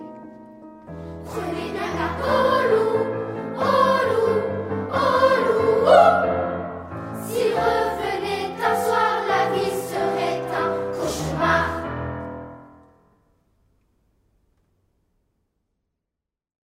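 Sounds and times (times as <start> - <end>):
ensemble playing tutti: 0.1 - 12.5.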